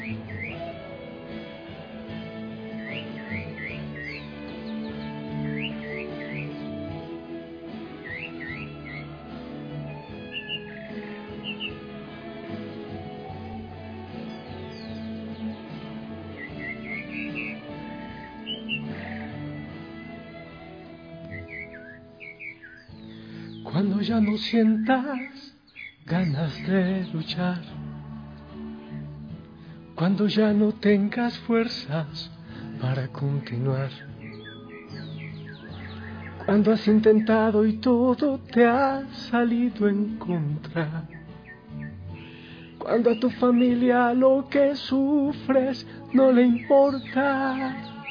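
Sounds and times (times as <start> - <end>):
small pet bird chirping: 0.0 - 0.7, 2.8 - 6.7, 8.0 - 9.1, 10.2 - 11.8, 14.2 - 19.4, 21.3 - 27.3, 33.9 - 37.5, 46.2 - 48.0
dense music: 0.0 - 48.0
speech: 23.8 - 25.5, 26.1 - 27.7, 30.1 - 34.1, 36.5 - 41.2, 42.9 - 47.9.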